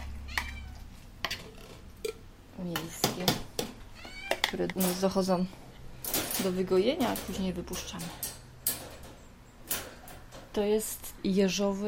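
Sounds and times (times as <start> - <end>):
cats meowing after sterilization while recovering at a shelter: 0.0 - 1.0, 3.8 - 4.6
speech: 2.6 - 3.4, 4.5 - 5.6, 6.4 - 8.3, 10.6 - 11.8.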